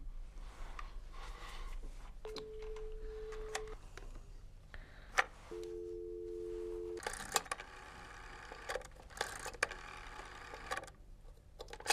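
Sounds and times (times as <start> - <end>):
faint hiss: 0.0 - 11.8
unanswered telephone line ringing tones: 2.3 - 3.8, 5.5 - 8.7.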